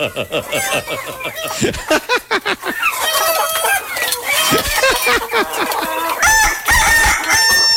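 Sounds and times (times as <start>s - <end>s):
laughter: 0.0s - 3.8s, 4.4s - 6.2s
hens clucking and cackling: 0.0s - 7.7s
roosters crowing: 6.2s - 7.7s.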